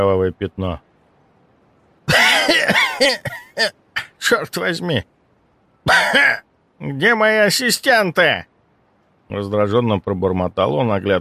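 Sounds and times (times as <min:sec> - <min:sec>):
speech: 0:00.0 - 0:00.9, 0:03.0 - 0:05.1, 0:05.9 - 0:08.5, 0:09.3 - 0:11.1
man's sharp harsh cough: 0:02.1 - 0:04.2, 0:05.9 - 0:06.4.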